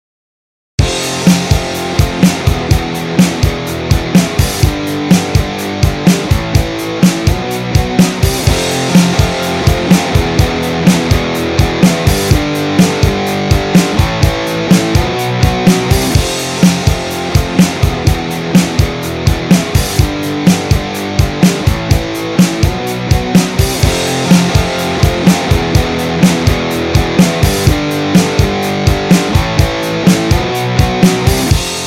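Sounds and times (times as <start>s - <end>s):
rock guitar strumming: 0.8s - 31.8s.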